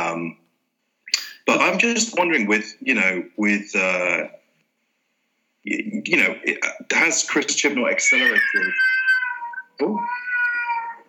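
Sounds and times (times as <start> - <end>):
speech: 0.2 - 0.4, 1.5 - 4.4, 5.6 - 9.0, 9.8 - 10.2
pet cats fighting, yowling: 8.0 - 11.0.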